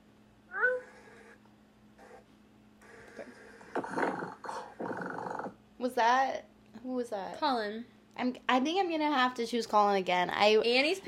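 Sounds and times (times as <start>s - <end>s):
person imitating cat meowing: 0.5s - 0.9s
person imitating a rough rumbling cat purr: 0.5s - 1.3s, 3.7s - 5.6s
speech: 5.8s - 11.0s.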